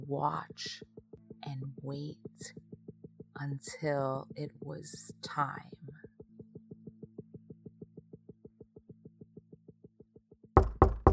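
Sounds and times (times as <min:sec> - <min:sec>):
soft steady pulsing beat: 0:00.0 - 0:11.1
speech: 0:00.1 - 0:02.6, 0:03.4 - 0:05.8
heavy knocks on a house door: 0:10.6 - 0:11.1.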